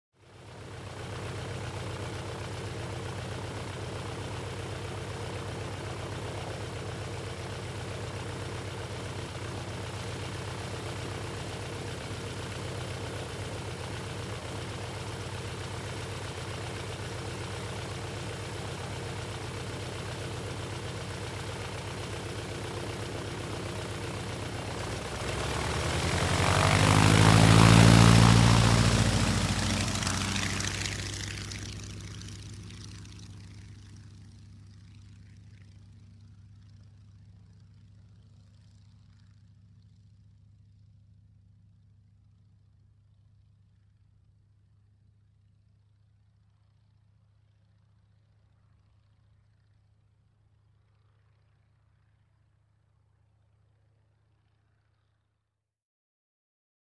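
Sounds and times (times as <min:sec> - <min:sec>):
light aircraft preparing for flight: 0:00.2 - 0:55.3.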